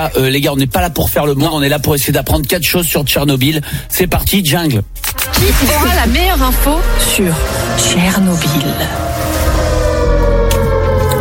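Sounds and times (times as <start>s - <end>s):
speech: 0.0s - 9.1s
dense rumbling wash of noise: 5.3s - 11.1s
siren as disaster ambience: 6.9s - 11.1s.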